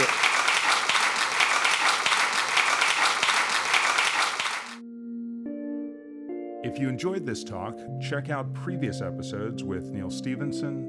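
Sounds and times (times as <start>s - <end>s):
large audience applause: 0.0s - 4.8s
speech: 6.7s - 10.8s.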